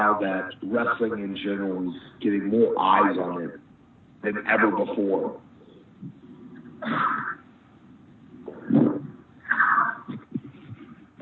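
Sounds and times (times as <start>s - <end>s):
speech: 0.0s - 3.6s, 4.2s - 6.2s, 6.8s - 7.4s
person sneezing: 6.8s - 7.4s.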